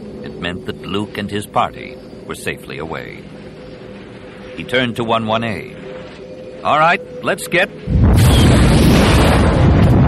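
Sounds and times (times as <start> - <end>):
speech: 0.2 - 3.4, 4.6 - 5.8, 6.6 - 8.2
plasma blast hitting a starship, deep rumbling explosion effect: 7.9 - 10.0.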